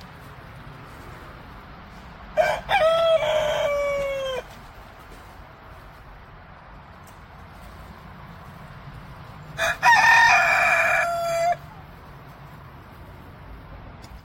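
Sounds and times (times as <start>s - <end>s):
Leghorn chickens crowing: 2.3s - 4.9s, 9.4s - 12.0s.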